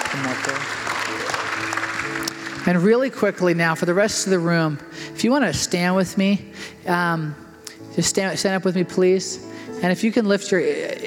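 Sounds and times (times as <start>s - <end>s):
crowd clapping: 0.0s - 2.9s
speech: 0.2s - 7.4s, 8.0s - 11.0s.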